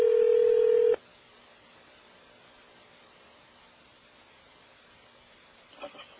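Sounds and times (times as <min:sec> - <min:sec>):
faint hissy telephone line: 0:00.0 - 0:01.0
loud steady telephone tone: 0:00.0 - 0:01.0.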